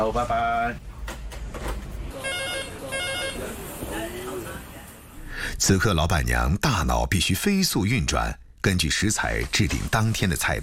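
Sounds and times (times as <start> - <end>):
speech: 0.0 - 0.9, 5.6 - 10.6
restaurant telephone ringing in electronic bursts: 2.2 - 3.4.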